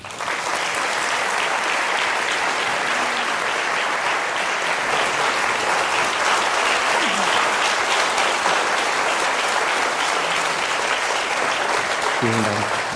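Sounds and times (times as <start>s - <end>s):
church audience applause welcoming a guest speaker at an evening lecture: 0.0s - 12.9s.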